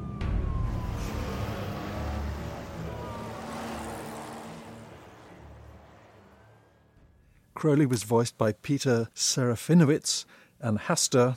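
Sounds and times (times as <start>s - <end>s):
police car siren wailing: 0.0s - 6.9s
engine and road noise: 0.0s - 7.6s
traffic roaring: 0.0s - 7.6s
speech: 7.6s - 11.3s.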